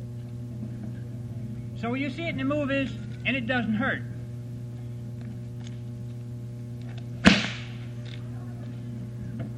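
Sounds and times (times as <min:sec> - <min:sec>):
steady low hum: 0:00.0 - 0:09.5
speech: 0:01.8 - 0:04.1
bullwhip crack in whipping demonstration: 0:07.2 - 0:07.8.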